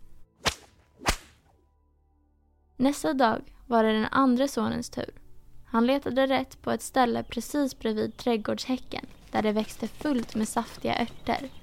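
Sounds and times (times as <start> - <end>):
measuring stick whipping strikes: 0.4 - 1.5
speech: 2.8 - 11.6.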